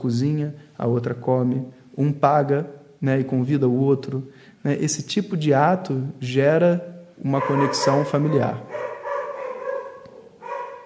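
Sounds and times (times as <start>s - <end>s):
speech: 0.0s - 8.9s
small pet dog barking: 7.4s - 10.8s.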